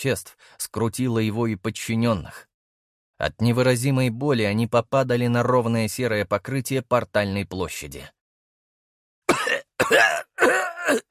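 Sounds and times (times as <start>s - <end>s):
speech: 0.0s - 2.5s, 3.2s - 8.2s, 9.4s - 11.1s
patrol group leader coughing harshly in pain: 9.3s - 11.1s.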